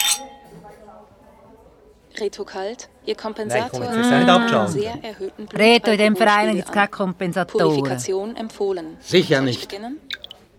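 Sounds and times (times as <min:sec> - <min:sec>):
glasses clinking in a toast: 0:00.0 - 0:00.6
speech: 0:02.2 - 0:10.2.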